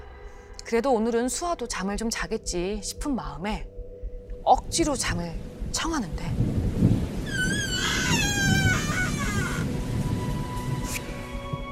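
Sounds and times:
speech: 0.7s - 3.7s, 4.4s - 6.5s
low rolling thunder: 4.9s - 10.8s
high wavering creak-like squeal: 7.3s - 9.8s.

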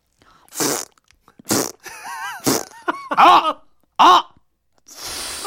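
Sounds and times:
cartoonish sputtering fart sound effect: 0.5s - 2.8s
speech: 3.2s - 4.2s.

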